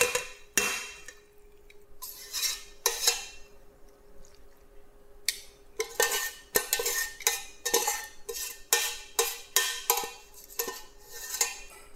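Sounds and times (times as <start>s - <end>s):
utensil scraping pesto from a pan into a bowl: 2.0s - 3.5s, 5.8s - 11.9s.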